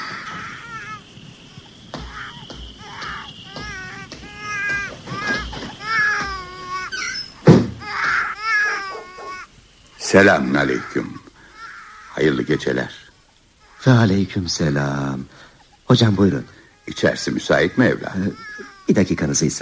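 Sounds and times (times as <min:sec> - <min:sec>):
baby crying at night: 0:00.0 - 0:19.6
thump: 0:07.5 - 0:07.8
speech: 0:10.1 - 0:11.2, 0:12.2 - 0:13.0, 0:13.8 - 0:19.6.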